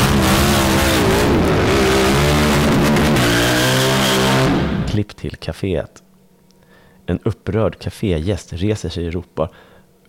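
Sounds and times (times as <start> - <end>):
motorcycle engine revving and roaring away: 0.0 - 5.0
speech: 5.4 - 6.1, 7.1 - 9.7.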